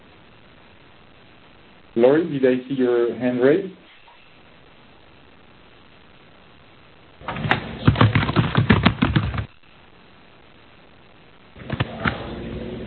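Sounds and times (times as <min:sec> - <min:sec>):
low hiss: 0:00.0 - 0:08.0, 0:09.4 - 0:12.8
speech: 0:02.0 - 0:03.8
keyboard typing: 0:07.8 - 0:09.5.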